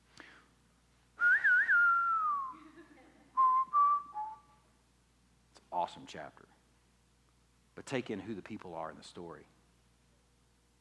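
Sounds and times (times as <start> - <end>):
lone whistler whistling a slow lonesome Western showdown-style melody: 1.2 - 2.6, 3.4 - 4.5
speech: 6.0 - 6.6, 7.8 - 9.6.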